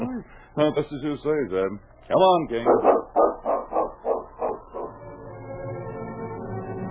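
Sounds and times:
speech: 0:00.2 - 0:03.3
dog barking: 0:02.7 - 0:05.0.

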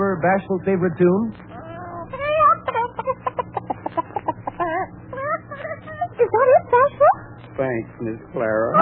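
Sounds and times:
low steady hum: 0:00.0 - 0:08.7
speech: 0:00.1 - 0:01.5, 0:07.6 - 0:08.7
person imitating hen clucking: 0:01.5 - 0:06.1.

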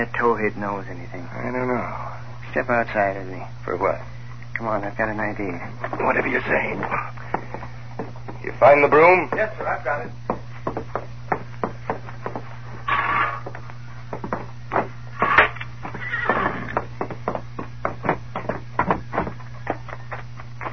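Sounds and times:
speech: 0:00.0 - 0:07.2, 0:08.4 - 0:10.3
steady low hum: 0:00.0 - 0:20.7
hooves clip-clopping: 0:05.8 - 0:20.7
horse neighing: 0:12.8 - 0:13.5, 0:15.2 - 0:16.8.

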